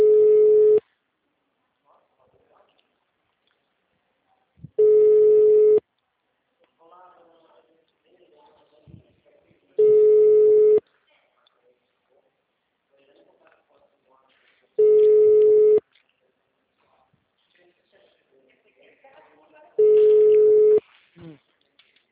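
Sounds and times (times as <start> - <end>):
telephone busy signal on a phone line: 0.0 - 0.8, 4.8 - 5.8, 9.8 - 10.8, 14.8 - 15.8, 19.8 - 20.8
recorded voice speaking quietly: 1.5 - 3.1, 6.5 - 21.7.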